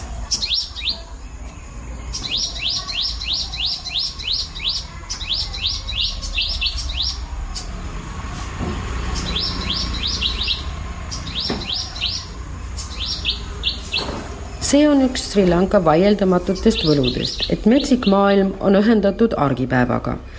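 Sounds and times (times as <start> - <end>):
tropical birdsong in Sri Lanka: 0.0 - 20.3
speech: 14.7 - 20.3.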